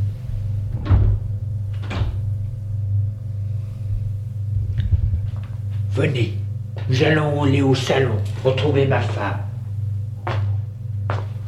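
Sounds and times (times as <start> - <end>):
steady low hum: 0.0 - 11.4
front door being opened: 0.7 - 2.3
speech: 6.0 - 9.5.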